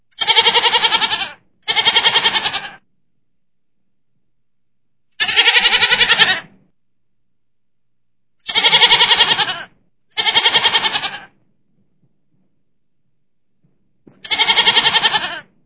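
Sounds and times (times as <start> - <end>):
goat bleating: 0.2 - 2.8, 5.2 - 6.6, 8.4 - 11.4, 14.2 - 15.5.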